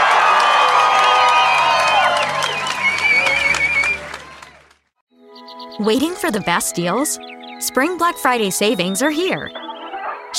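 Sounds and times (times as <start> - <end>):
concert crowd shouts and whoops: 0.0 - 4.6
concert crowd cheering for a band: 0.0 - 4.9
speech: 5.8 - 9.6.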